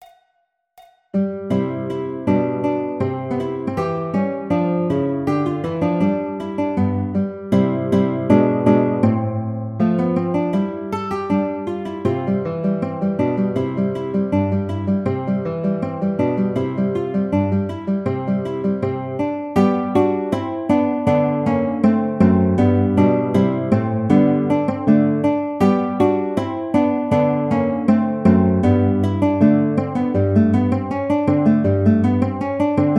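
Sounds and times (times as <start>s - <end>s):
classical guitar piece: 1.1s - 32.9s.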